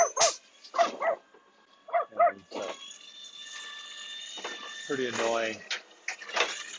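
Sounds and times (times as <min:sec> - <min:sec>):
dog barking sharply at a passing truck: 0:00.0 - 0:01.2, 0:01.9 - 0:02.4
speech: 0:04.9 - 0:05.7.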